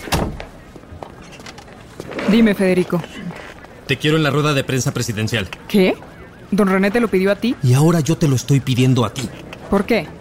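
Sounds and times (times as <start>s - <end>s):
door shutting with a solid thud: 0.0s - 0.5s
speech: 2.3s - 3.2s, 3.9s - 10.1s.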